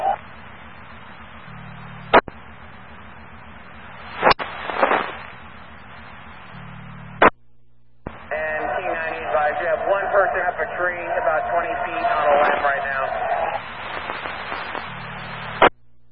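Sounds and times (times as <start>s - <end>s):
crackly radio-like hiss: 0.0s - 16.1s
fireworks popping: 4.2s - 5.2s.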